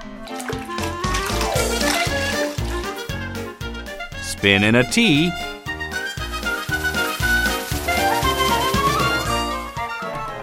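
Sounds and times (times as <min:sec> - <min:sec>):
water sloshing and splashing: 0:00.0 - 0:03.7, 0:05.8 - 0:09.8
speech: 0:04.4 - 0:05.5.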